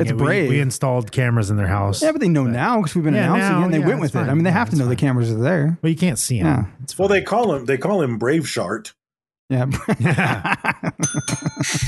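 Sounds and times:
speech: 0.0s - 11.8s
laughter: 9.7s - 11.8s
small bell ringing: 11.0s - 11.8s.

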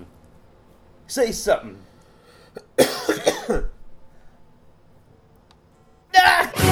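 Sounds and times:
speech: 1.1s - 1.9s, 2.8s - 3.7s
person coughing: 2.6s - 3.8s, 6.2s - 6.6s.

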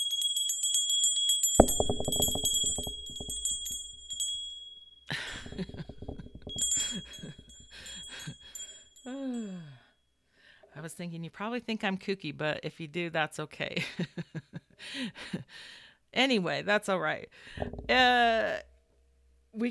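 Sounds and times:
bright high bells jingling and chiming: 0.0s - 9.4s
sharp clanks: 1.6s - 4.4s, 5.1s - 8.4s, 17.6s - 18.2s
speech: 10.8s - 18.7s.

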